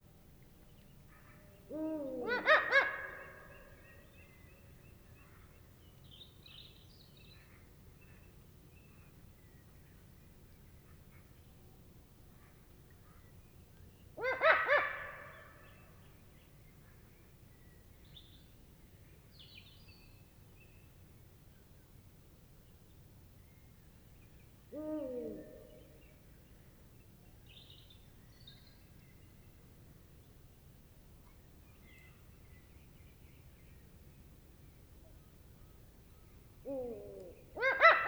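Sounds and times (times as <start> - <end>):
male Eurasian eagle owl hooting: 1.7 - 3.0, 24.8 - 25.8, 36.7 - 38.0
female Eurasian eagle owl cackling: 1.7 - 3.3, 14.2 - 15.3, 24.7 - 25.9, 36.6 - 38.0.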